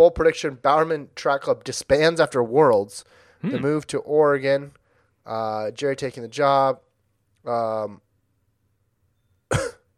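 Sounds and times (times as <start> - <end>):
speech: 0.0 - 6.8, 7.4 - 8.0, 9.5 - 9.8
drawn-out voiced throat sound: 3.4 - 3.8
sharp harsh cough: 9.5 - 9.9.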